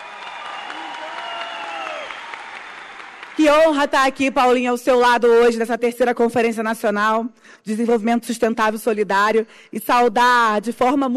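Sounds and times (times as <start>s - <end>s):
faint cheering or voices: 0.0s - 3.1s
audience applause from a large crowd: 0.0s - 3.5s
speech: 3.4s - 11.1s.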